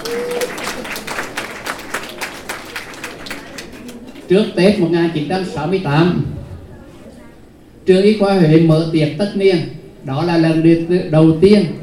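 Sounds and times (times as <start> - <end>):
audience applause: 0.0 - 4.3
speech: 4.3 - 6.3, 7.9 - 11.8.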